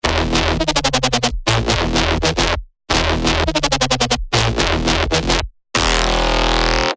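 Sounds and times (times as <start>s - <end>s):
detuned bass synth: 0.0s - 6.9s.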